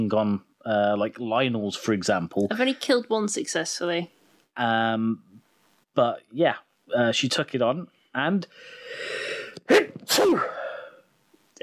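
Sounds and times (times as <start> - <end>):
speech: 0.0 - 5.3, 6.0 - 10.6
woman sneezing: 9.6 - 10.8.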